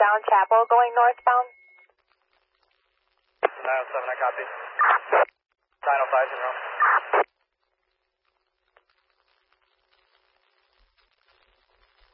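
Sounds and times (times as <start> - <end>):
fire dispatch alert tones: 0.0 - 1.6
speech: 0.2 - 1.6, 3.6 - 7.3
radio click: 3.4 - 5.3, 6.0 - 7.3.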